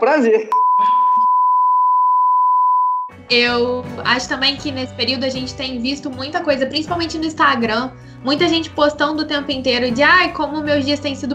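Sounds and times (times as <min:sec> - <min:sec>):
speech: 0:00.0 - 0:01.0, 0:03.3 - 0:11.3
loud steady electronic alarm tone: 0:00.5 - 0:03.1.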